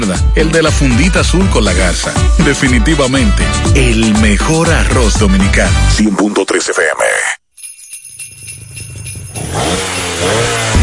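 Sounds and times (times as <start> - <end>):
speech: 0.0 - 7.4
engine idling and revving: 9.3 - 10.8.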